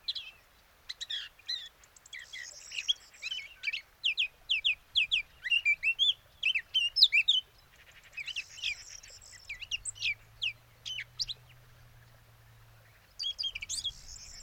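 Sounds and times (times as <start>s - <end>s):
Eurasian blackcap Sylvia atricapilla song: 0.0s - 14.4s.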